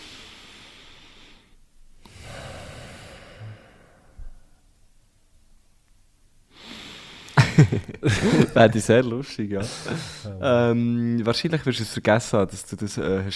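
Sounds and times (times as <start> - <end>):
heavy deliberate loud breathing: 0.0 - 4.7, 6.5 - 10.8
laughter: 7.4 - 13.2
speech: 7.6 - 13.3.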